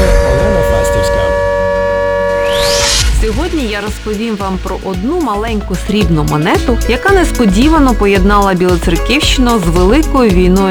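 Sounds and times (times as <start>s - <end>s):
air raid siren during an air alert in Bila Tserkva: 0.0s - 5.4s
speech: 3.7s - 10.6s.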